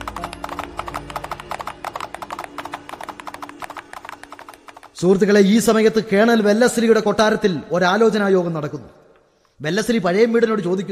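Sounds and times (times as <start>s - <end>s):
hooves of two horses clip-clopping as riders ride off at night: 0.0s - 5.3s
speech: 5.0s - 9.0s, 9.6s - 10.8s.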